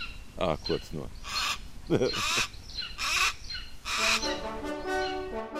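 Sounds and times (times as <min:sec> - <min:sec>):
golden eagle calling in thin yelping cries: 0:00.0 - 0:05.4
speech: 0:00.4 - 0:01.3, 0:01.9 - 0:02.6
laughter: 0:01.9 - 0:02.4.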